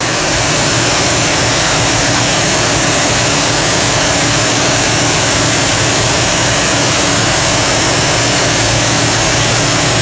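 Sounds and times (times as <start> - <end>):
loud industrial water processing ambience: 0.0 - 10.0.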